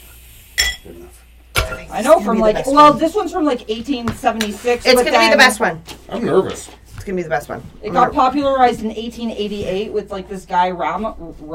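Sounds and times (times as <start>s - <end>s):
ice clinking against glass in a gin fizz cocktail: 0.6s - 0.9s
speech: 0.8s - 11.5s.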